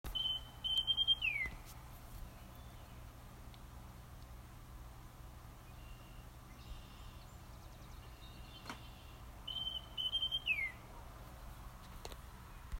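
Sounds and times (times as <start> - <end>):
Northern Oriole calling: 0.1 - 1.6, 5.6 - 11.0.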